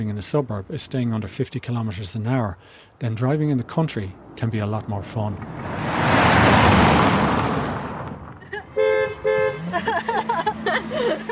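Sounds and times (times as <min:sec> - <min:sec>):
speech: 0:00.0 - 0:05.8
rushing wind-like noise: 0:03.0 - 0:08.4
car horn honk in a car park: 0:08.5 - 0:10.3
laughter: 0:09.6 - 0:11.2.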